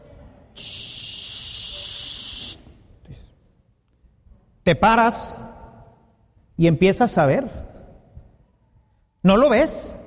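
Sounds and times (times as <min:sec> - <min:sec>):
voice imitating a rattlesnake's rattle: 0:00.6 - 0:02.6
speech: 0:04.7 - 0:05.4, 0:06.6 - 0:07.6, 0:09.2 - 0:10.0.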